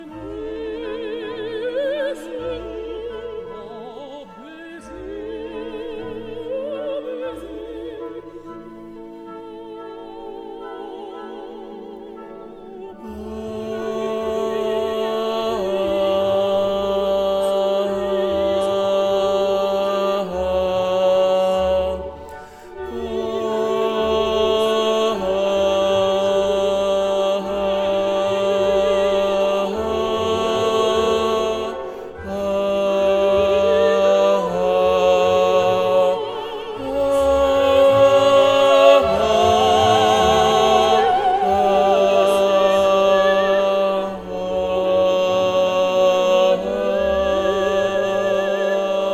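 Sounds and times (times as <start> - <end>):
tenors singing an opera barcarolle: 0.0 - 49.1.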